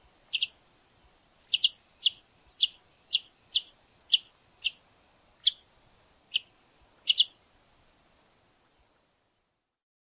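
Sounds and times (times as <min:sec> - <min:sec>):
scimitar-billed woodcreeper calling: 0:00.3 - 0:00.6, 0:01.5 - 0:04.8, 0:05.4 - 0:05.7, 0:06.3 - 0:07.4.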